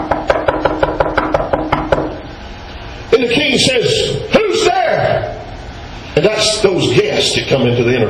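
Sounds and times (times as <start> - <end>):
knocking on a door: 0.0 - 2.2
speech: 3.2 - 4.4, 6.2 - 8.0.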